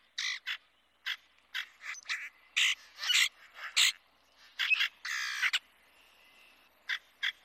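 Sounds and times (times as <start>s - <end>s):
grackle harsh raspy calls: 0.2s - 5.7s.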